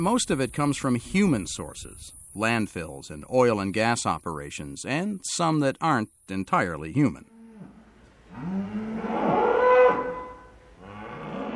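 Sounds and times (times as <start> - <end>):
speech: 0.0 - 7.3, 8.3 - 10.0
cows mooing: 7.3 - 11.5.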